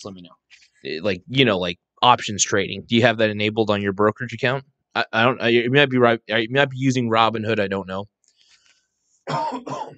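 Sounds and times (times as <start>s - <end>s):
speech: 0.0s - 8.1s, 9.3s - 9.9s
person coughing: 9.3s - 9.9s.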